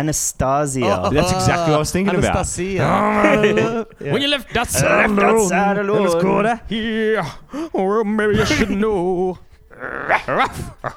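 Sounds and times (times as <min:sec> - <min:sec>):
speech: 0:00.0 - 0:10.9
laughter: 0:00.8 - 0:10.9
person imitating dog barking: 0:09.7 - 0:10.9.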